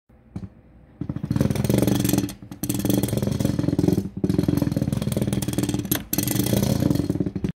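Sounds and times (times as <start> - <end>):
electric jackhammer: 1.0 - 7.5.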